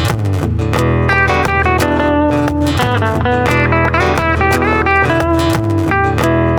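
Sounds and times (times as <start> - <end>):
Fender electric guitar on semi-clean setting playing picked notes and chords: 0.0 - 6.5.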